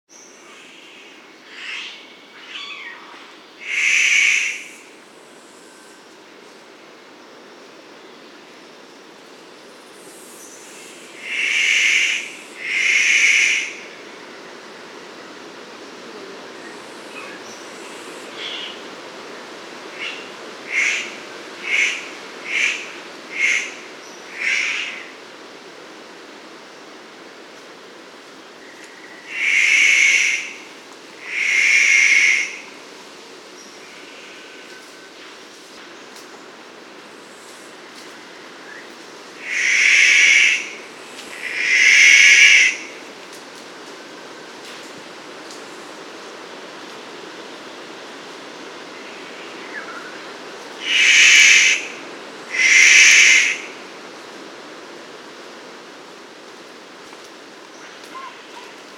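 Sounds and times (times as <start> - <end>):
rifle bird of paradise calling: 0.1 - 6.1, 9.5 - 25.2, 28.5 - 32.8, 37.2 - 43.2, 48.9 - 53.9, 57.7 - 58.9.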